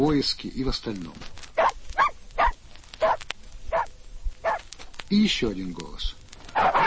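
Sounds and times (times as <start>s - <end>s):
speech: 0.0s - 1.5s, 5.1s - 6.7s
reindeer-herding laika barking: 1.6s - 4.6s, 6.6s - 6.8s.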